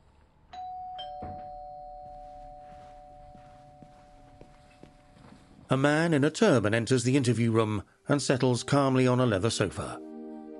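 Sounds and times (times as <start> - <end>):
doorbell chiming a two-note ding-dong: 0.6 - 5.2
speech: 5.7 - 10.1.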